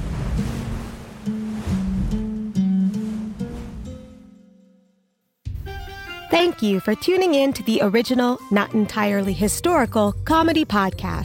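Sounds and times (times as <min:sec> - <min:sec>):
rushing water of a river parting: 0:00.0 - 0:04.2
speech: 0:06.3 - 0:11.2.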